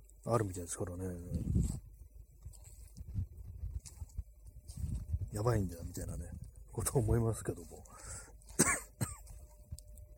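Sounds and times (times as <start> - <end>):
speech: 0.2 - 1.8, 5.4 - 8.2
person coughing harshly: 8.5 - 9.4
person clearing throat: 8.6 - 9.4.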